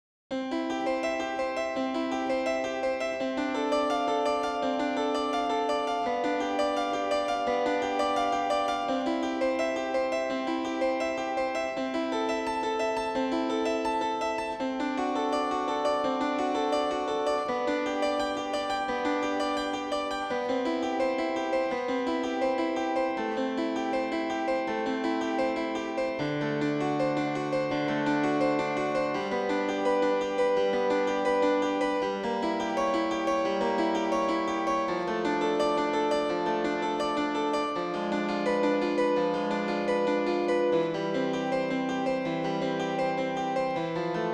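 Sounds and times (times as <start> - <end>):
harpsichord-like piano: 0.3 - 44.3.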